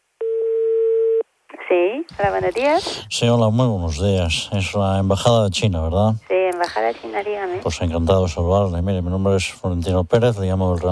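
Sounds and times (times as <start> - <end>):
telephone ringing tone while calling an embassy: 0.2 - 1.2
speech: 1.7 - 10.9.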